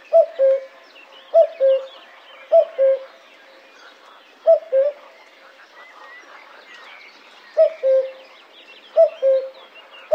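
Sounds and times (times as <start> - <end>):
Common cuckoo calling: 0.0 - 3.2, 4.4 - 5.2, 7.5 - 8.2, 8.9 - 10.1
birds chirping: 0.0 - 10.1.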